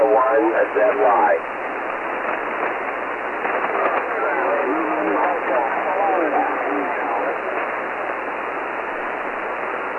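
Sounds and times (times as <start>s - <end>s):
faint overlapping voices of ham radio stations calling in a pileup: 0.0s - 9.9s
radio static: 0.0s - 9.9s
speech: 0.7s - 1.6s.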